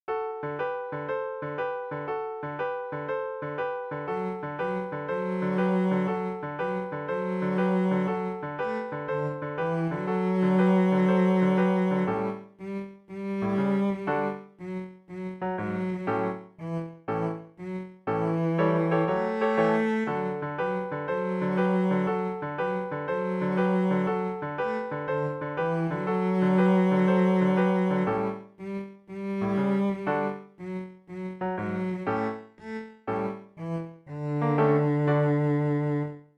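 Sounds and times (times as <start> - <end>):
cello playing boogie: 0.5 - 36.2.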